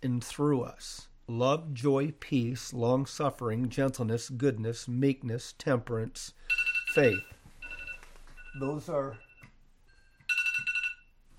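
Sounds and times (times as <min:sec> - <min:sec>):
speech: 0:00.2 - 0:07.4, 0:08.5 - 0:09.2
mobile phone ringtone with bright warbling electronic melody: 0:06.4 - 0:11.2.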